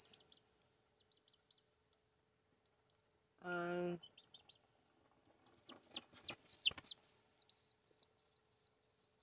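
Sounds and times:
quick high chirping peeps: 0.0s - 9.2s
chicken letting out a loud harsh cluck: 4.2s - 8.0s.

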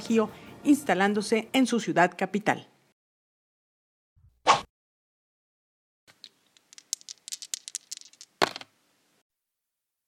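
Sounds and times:
speech: 0.1s - 2.7s
dice rattling and clattering across a hard surface: 6.1s - 8.8s.

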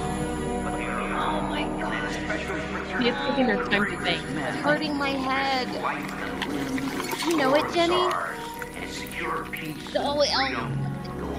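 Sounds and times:
murmur of voices: 0.7s - 11.3s
speech: 3.0s - 10.9s
whiskey pouring into a glass: 5.6s - 10.0s.

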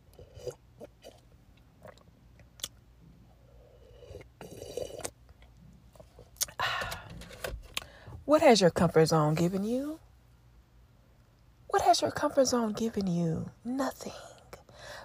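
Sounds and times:
swallowing coffee: 0.0s - 2.8s, 3.4s - 6.6s
slurping sips of coffee: 3.6s - 5.2s
speech: 8.3s - 10.0s, 12.0s - 14.3s.

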